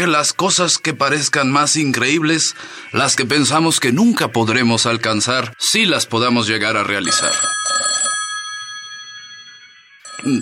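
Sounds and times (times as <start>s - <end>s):
speech: 0.0s - 7.8s, 10.2s - 10.4s
telephone ringing with a bright metallic bell tone: 6.8s - 10.4s.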